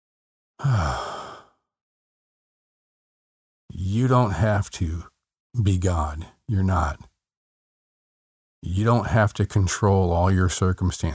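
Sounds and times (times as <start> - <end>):
speech: 0.6 - 1.1, 3.9 - 7.1, 8.6 - 11.1
deep breath out through a relaxed sigh during guided breathing meditation: 0.6 - 1.6.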